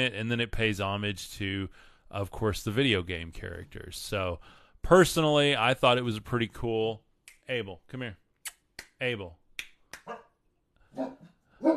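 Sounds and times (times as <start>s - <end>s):
speech: 0.0s - 8.2s, 9.0s - 9.4s, 11.0s - 11.7s
dogs barking: 10.9s - 11.7s.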